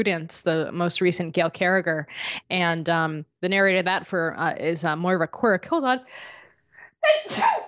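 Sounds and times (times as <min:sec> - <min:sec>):
speech: 0:00.0 - 0:06.4, 0:07.0 - 0:07.6
quick breathy inhales before a sneeze: 0:06.1 - 0:07.0
person sneezing: 0:07.1 - 0:07.6.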